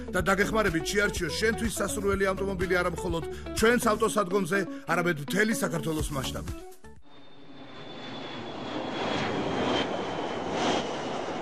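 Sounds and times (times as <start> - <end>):
speech: 0.0 - 6.8
airplane engine droning: 7.0 - 11.4
faint high whine: 7.0 - 11.4.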